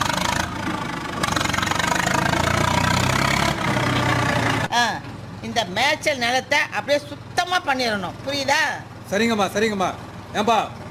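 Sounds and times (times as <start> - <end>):
backhoe loader engine idling: 0.0 - 10.8
speech: 5.6 - 10.8.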